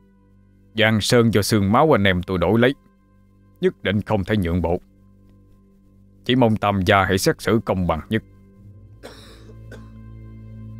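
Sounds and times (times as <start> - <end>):
low hum: 0.0 - 10.7
speech: 0.8 - 2.9, 3.6 - 4.9, 6.2 - 8.3
old man coughing: 9.0 - 10.0.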